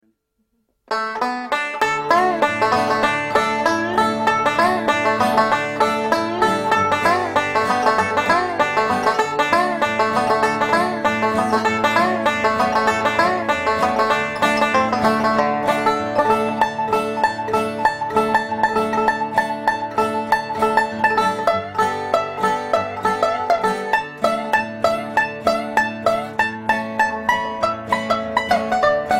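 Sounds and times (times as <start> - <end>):
banjo riff: 0.9 - 29.1.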